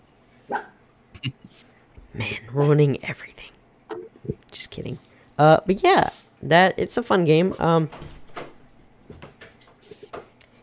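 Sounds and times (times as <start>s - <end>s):
dog barking: 0.5s - 0.8s
speech: 2.2s - 3.4s, 4.8s - 8.1s.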